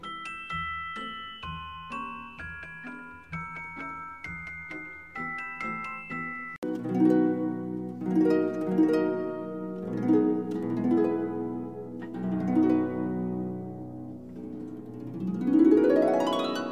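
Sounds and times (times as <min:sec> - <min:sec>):
celeste playing bell-like notes in a gentle melody: 0:00.0 - 0:16.7.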